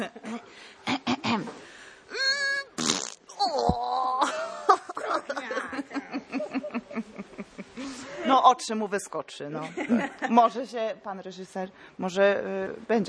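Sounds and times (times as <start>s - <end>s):
person imitating farting with mouth, blowing raspberries: 2.7s - 4.0s
laughter: 4.2s - 8.0s
speech: 8.5s - 13.0s.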